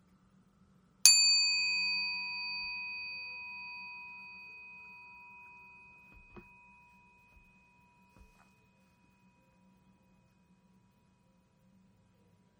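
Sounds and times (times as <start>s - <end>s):
meditation bell ringing: 1.1s - 9.5s.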